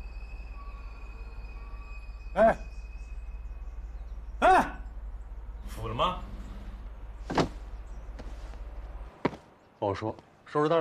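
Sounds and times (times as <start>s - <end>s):
steady low hum: 0.0s - 9.2s
speech: 2.4s - 2.7s, 9.8s - 10.7s
door solid clunk: 7.3s - 7.7s.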